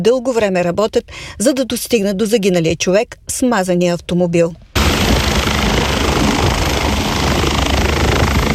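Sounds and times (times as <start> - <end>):
speech: 0.0 - 4.6
medical helicopter air ambulance landing on a motorway: 4.8 - 8.5.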